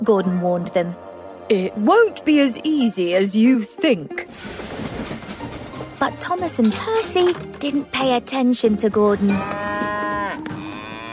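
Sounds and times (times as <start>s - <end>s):
speech: 0.0s - 4.7s, 6.0s - 9.7s
cow mooing: 9.3s - 11.1s.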